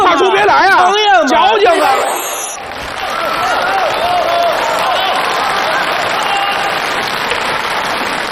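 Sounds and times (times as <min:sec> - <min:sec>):
faint voices and cheers: 0:00.0 - 0:08.3
theatre audience applause for performers on stage: 0:02.6 - 0:08.3.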